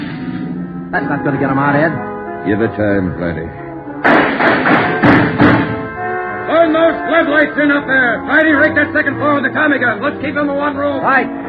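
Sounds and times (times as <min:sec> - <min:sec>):
speech: 0:00.9 - 0:03.6, 0:06.8 - 0:11.4
tear gas canisters fired into a room: 0:04.0 - 0:05.8.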